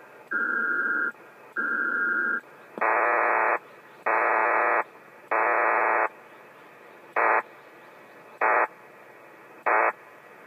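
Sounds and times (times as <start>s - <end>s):
PACTOR IV digital radio data signal: 0.3s - 6.1s, 7.1s - 7.5s, 8.3s - 8.7s, 9.6s - 10.0s.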